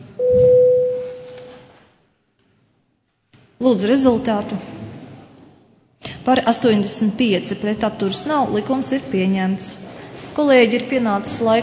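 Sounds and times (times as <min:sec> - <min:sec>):
steady electronic parliament voting bell tone: 0:00.2 - 0:01.6
speech: 0:03.6 - 0:04.7, 0:06.3 - 0:11.6.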